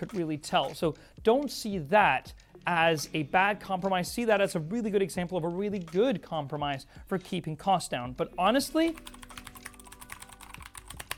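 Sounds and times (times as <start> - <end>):
speech: 0.0 - 9.2
rapid typing on a mechanical keyboard with Gateron switches: 8.6 - 11.1.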